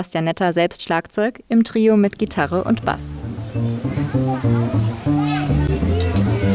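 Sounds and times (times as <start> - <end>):
speech: 0.0 - 4.5
children calling and chattering by a pond: 2.2 - 6.5
faint water splashing in a pond: 2.2 - 6.5
children shrieking by a pond: 3.6 - 6.5.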